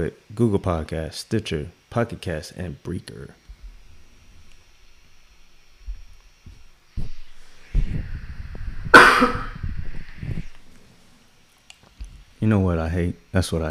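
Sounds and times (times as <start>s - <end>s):
speech: 0.0s - 3.4s, 12.4s - 13.7s
rough throaty rumbling: 7.6s - 10.6s
person coughing: 8.9s - 9.6s.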